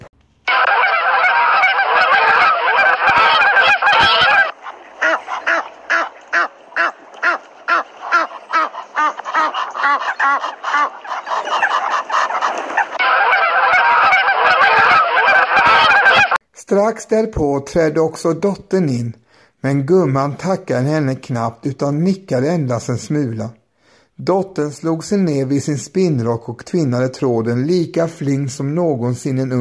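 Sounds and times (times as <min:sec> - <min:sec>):
flock of geese returning from pasture honking and cackling: 0:00.5 - 0:16.4
speech: 0:16.7 - 0:23.6, 0:24.2 - 0:29.6.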